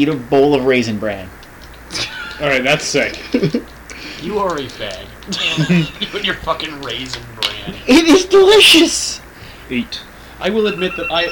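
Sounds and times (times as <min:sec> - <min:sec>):
speech: 0:00.0 - 0:11.3
laughter: 0:01.8 - 0:08.3
phone alarm ringing: 0:10.4 - 0:11.3.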